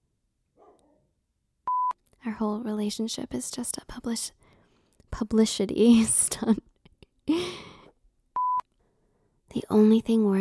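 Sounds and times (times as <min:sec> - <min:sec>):
single dog bark: 0:00.6 - 0:01.1
speech: 0:02.3 - 0:04.4, 0:05.1 - 0:06.6, 0:09.7 - 0:10.3.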